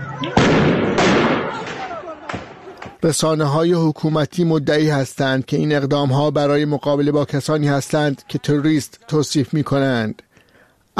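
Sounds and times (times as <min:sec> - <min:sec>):
speech: 0:00.2 - 0:00.7, 0:03.0 - 0:10.3
live-ammunition gunshots from government forces firing at protesters in Iran: 0:00.2 - 0:02.9.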